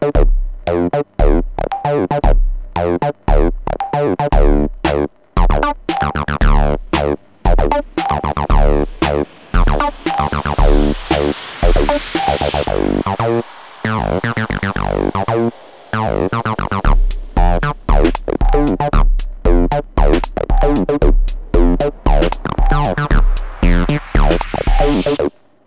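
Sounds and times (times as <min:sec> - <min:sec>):
drum machine: 0:00.2 - 0:15.4, 0:16.0 - 0:25.2.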